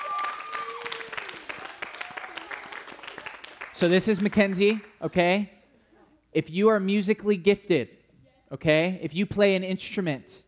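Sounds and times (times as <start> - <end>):
crowd whooping and cheering: 0.0 - 3.4
audience applause: 0.0 - 4.9
speech: 3.8 - 5.6, 6.3 - 10.4.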